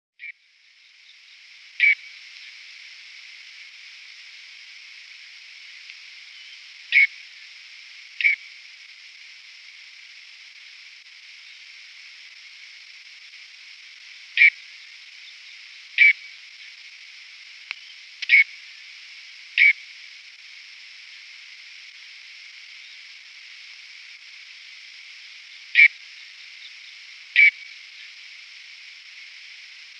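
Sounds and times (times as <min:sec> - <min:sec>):
whiskered tern calling: 0:01.8 - 0:02.5, 0:06.3 - 0:07.2, 0:08.2 - 0:08.5, 0:14.4 - 0:14.6, 0:16.0 - 0:16.3, 0:17.7 - 0:18.6, 0:19.6 - 0:19.8, 0:25.7 - 0:26.0, 0:26.6 - 0:28.1.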